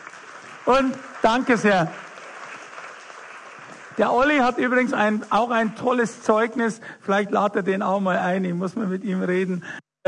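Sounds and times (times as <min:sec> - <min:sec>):
audience applause: 0:00.0 - 0:05.6
speech: 0:00.7 - 0:02.0, 0:04.0 - 0:10.0.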